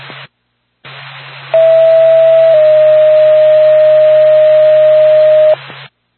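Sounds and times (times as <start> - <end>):
hissy humming radio channel: 0.0 - 6.1
dispatch radio paging alert tone: 1.6 - 5.6.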